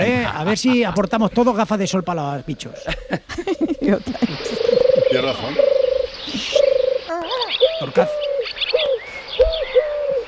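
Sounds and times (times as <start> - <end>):
speech: 0.3 - 10.0
laughter: 2.8 - 5.4
small birds chirping: 3.4 - 10.2
Eurasian collared dove cooing: 3.7 - 10.2.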